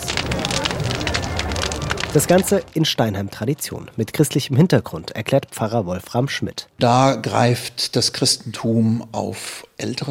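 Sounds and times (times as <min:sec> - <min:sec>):
large bonfire crackling and popping: 0:00.0 - 0:08.2
speech: 0:02.1 - 0:10.0.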